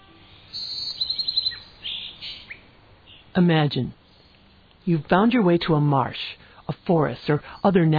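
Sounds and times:
faint steady background: 0.0 - 7.9
high-pitched bird calls and chirps in a natural habitat: 0.3 - 3.3
speech: 3.4 - 4.0, 4.8 - 7.9.

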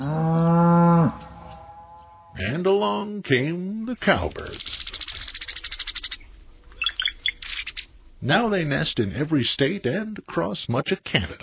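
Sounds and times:
cow mooing: 0.0 - 2.4
speech: 2.4 - 4.8, 8.2 - 11.4.

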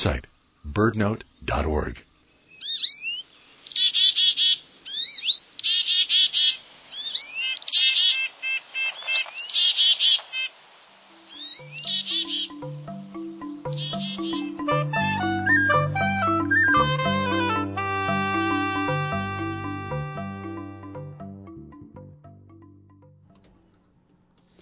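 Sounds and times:
speech: 0.0 - 2.1
birds chirping and trilling: 0.0 - 10.5, 11.1 - 23.1
low tonal notes: 11.7 - 23.7.

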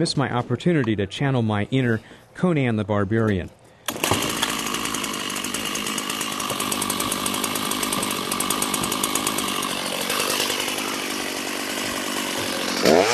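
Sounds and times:
speech: 0.0 - 3.6
chainsaw cutting through a plywood roof: 3.9 - 13.1.

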